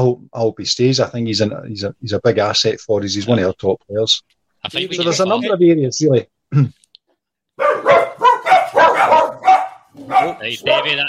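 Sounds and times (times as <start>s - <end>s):
speech: 0.0s - 6.8s, 10.2s - 11.0s
dog barking sharply and excitedly: 7.6s - 11.0s.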